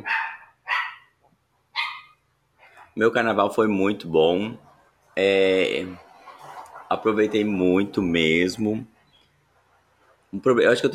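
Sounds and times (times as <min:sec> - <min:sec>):
dog barks: 0:00.0 - 0:01.2, 0:01.8 - 0:02.2
speech: 0:03.0 - 0:06.0, 0:06.9 - 0:08.9, 0:10.3 - 0:10.9.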